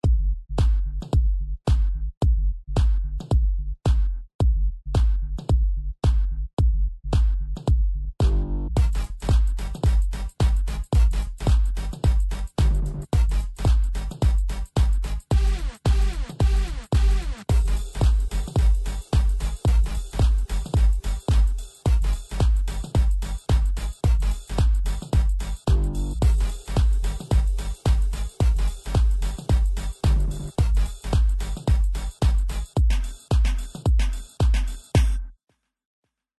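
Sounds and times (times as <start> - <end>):
percussion: 0.0 - 35.4.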